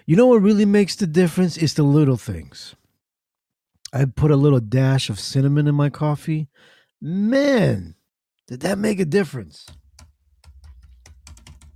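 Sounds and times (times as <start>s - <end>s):
speech: 0.1s - 2.8s, 3.9s - 9.8s
computer keyboard typing: 9.7s - 11.7s.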